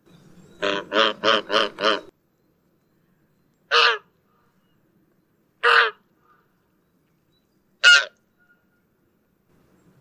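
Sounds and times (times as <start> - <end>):
wild goose calling: 0.6 - 2.1, 3.7 - 4.6, 5.6 - 6.5, 7.8 - 8.8.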